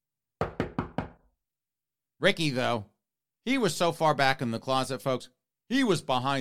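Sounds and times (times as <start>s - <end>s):
knocking on a wooden door: 0.4s - 1.3s
speech: 2.2s - 6.3s.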